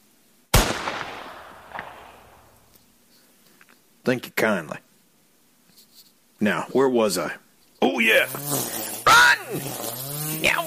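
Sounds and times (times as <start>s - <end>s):
gunshot from a Winchester .410 rifle fired at a snake: 0.5s - 2.7s
speech: 4.1s - 4.9s, 6.4s - 8.8s, 9.5s - 10.6s.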